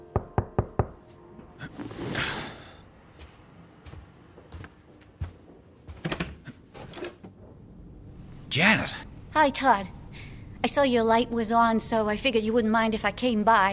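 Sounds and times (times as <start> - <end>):
knocking on a door: 0.2 - 1.0
speech: 8.5 - 10.0, 10.6 - 13.7.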